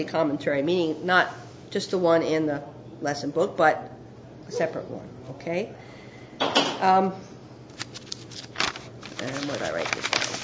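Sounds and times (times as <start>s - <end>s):
speech: 0.0s - 3.9s, 4.5s - 7.3s, 9.2s - 10.4s
paper sheets being shuffled: 7.7s - 10.4s.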